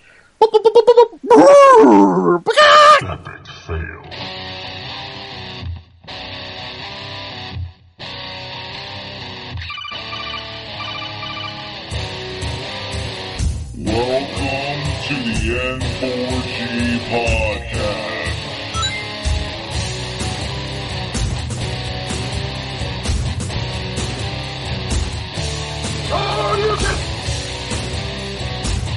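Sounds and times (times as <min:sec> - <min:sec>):
man's voice imitating a chicken-horse hybrid: 0:00.4 - 0:03.5, 0:26.1 - 0:27.1
music: 0:04.0 - 0:28.9.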